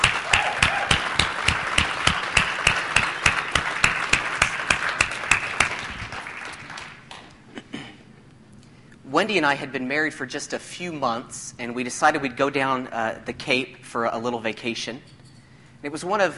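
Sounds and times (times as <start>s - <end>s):
audience crowd applauding: 0.0s - 7.3s
speech: 9.2s - 15.2s, 15.8s - 16.3s.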